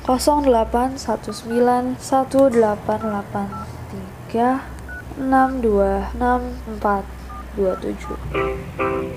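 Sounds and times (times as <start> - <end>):
speech: 0.1 - 3.7, 4.3 - 9.1
person humming short pitched beeps imitating telephone dialing tones: 7.3 - 8.2.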